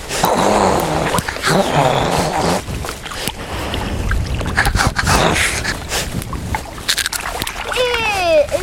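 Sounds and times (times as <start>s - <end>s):
water splashing and sloshing: 0.0s - 8.6s
otter growling in rough drawn-out bursts: 0.1s - 2.8s, 4.5s - 5.9s.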